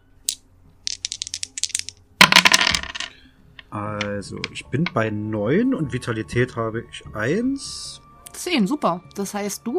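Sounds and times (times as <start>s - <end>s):
dice rolling across a hard surface: 0.3s - 3.1s
speech: 3.7s - 9.7s.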